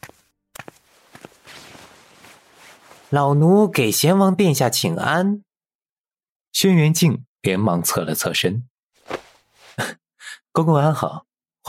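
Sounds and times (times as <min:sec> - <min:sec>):
quick light footsteps hurrying forward: 0:00.0 - 0:03.2, 0:09.0 - 0:09.8
speech: 0:03.1 - 0:05.5, 0:06.6 - 0:08.7, 0:10.6 - 0:11.6.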